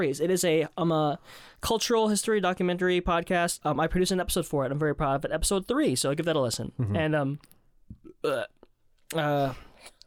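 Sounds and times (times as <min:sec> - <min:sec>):
speech: 0:00.0 - 0:07.6, 0:08.2 - 0:09.7
person burping while drinking liquor: 0:06.8 - 0:07.1, 0:08.0 - 0:09.2.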